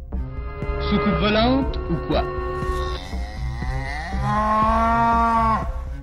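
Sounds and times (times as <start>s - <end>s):
cow mooing in a long drawn-out bellow: 0.3s - 5.9s
speech: 0.9s - 2.7s, 4.3s - 5.3s.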